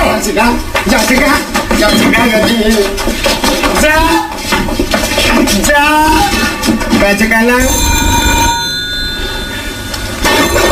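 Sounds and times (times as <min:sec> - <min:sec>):
speech: 0:00.2 - 0:08.0
telephone ringing: 0:07.6 - 0:10.7.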